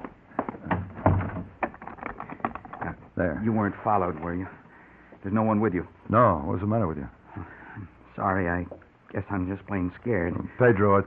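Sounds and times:
door being closed and locked: 0:00.0 - 0:01.8
speech: 0:03.2 - 0:04.6, 0:05.2 - 0:11.0.

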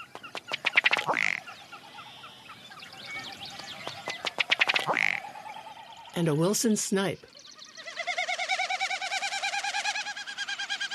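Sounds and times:
faint marsh ambience: 0:00.0 - 0:10.9
ruddy duck display call: 0:00.1 - 0:01.4, 0:03.9 - 0:05.2, 0:07.8 - 0:10.9
speech: 0:06.2 - 0:07.3.

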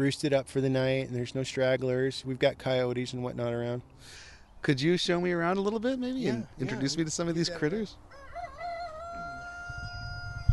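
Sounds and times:
speech: 0:00.0 - 0:08.1
English and Buff Orpington chicken crowing in a coop: 0:08.1 - 0:10.5.

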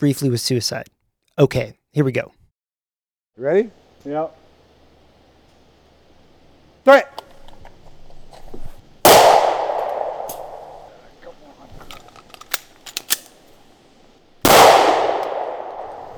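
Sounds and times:
speech: 0:00.0 - 0:02.4, 0:03.4 - 0:04.4, 0:06.8 - 0:07.2
gunshots at a makeshift woodland shooting range: 0:09.1 - 0:11.0, 0:14.4 - 0:16.1.

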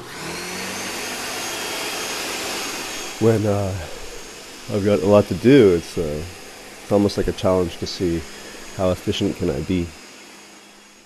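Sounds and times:
blender running at high speed with frozen fruit: 0:00.0 - 0:11.0
speech: 0:03.2 - 0:04.0, 0:04.7 - 0:10.0.

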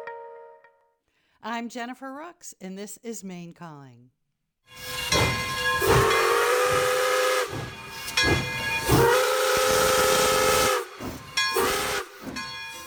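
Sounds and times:
speech: 0:01.5 - 0:06.0
steam train whistle blowing long loud blasts: 0:04.7 - 0:12.8.

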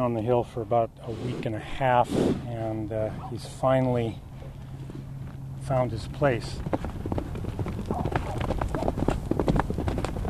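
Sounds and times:
speech: 0:00.0 - 0:04.3, 0:05.7 - 0:07.0
low rumbling background: 0:00.0 - 0:10.2
young Arabian gelding hooves clip-clopping: 0:04.4 - 0:10.2.

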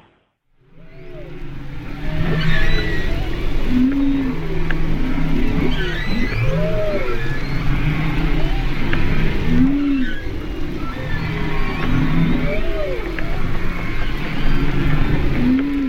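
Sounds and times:
low rumbling hiss of the sea underwater: 0:00.6 - 0:15.8
humpback whale calls recorded underwater by hydrophone: 0:00.7 - 0:15.8.

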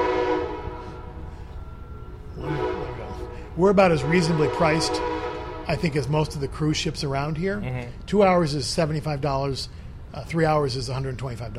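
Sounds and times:
passing train horn blasts: 0:00.0 - 0:06.9
low rumble of the passing train: 0:00.0 - 0:11.5
speech: 0:03.6 - 0:05.1, 0:05.7 - 0:11.5.

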